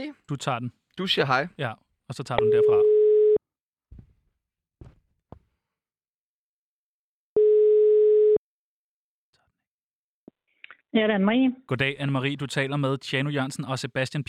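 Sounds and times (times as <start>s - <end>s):
speech: 0.0s - 2.9s, 10.9s - 14.2s
telephone ringback tone during an outgoing call: 2.4s - 3.4s, 7.4s - 8.4s.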